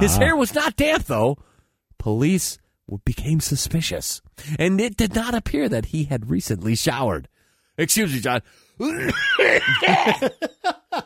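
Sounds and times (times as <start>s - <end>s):
speech: 0.0s - 11.0s
person coughing: 8.8s - 10.3s
laughter: 9.0s - 11.0s.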